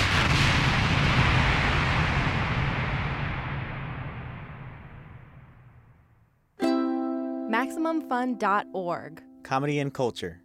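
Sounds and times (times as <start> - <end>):
roaring explosion sound effect: 0.0 - 6.2
speech: 7.7 - 10.4.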